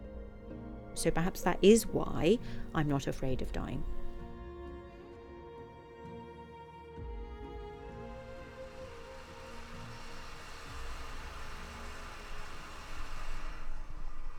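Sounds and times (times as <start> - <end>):
speech: 1.0 - 4.0
electric kettle heating water aboard a boat on a river: 1.0 - 4.3, 8.0 - 14.3.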